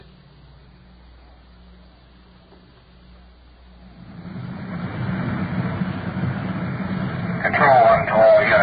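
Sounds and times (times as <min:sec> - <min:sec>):
police patrol car engine droning from inside the vehicle: 0:02.6 - 0:08.6
road noise: 0:03.7 - 0:08.6.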